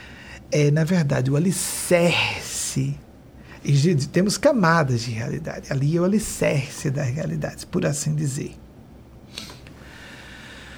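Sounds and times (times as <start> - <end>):
low steady hiss: 0.0 - 10.7
speech: 0.5 - 8.6
wet nasal sniff from a nose congested by allergic rhinitis: 9.3 - 10.7.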